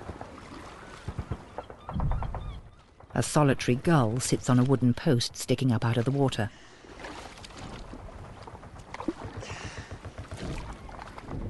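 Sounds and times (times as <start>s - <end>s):
oars rowing a boat through grey misty water: 0.0s - 2.2s, 3.7s - 11.4s
low knocks of oars in a rowing boat: 0.0s - 3.2s, 6.8s - 11.4s
speech: 3.2s - 6.7s.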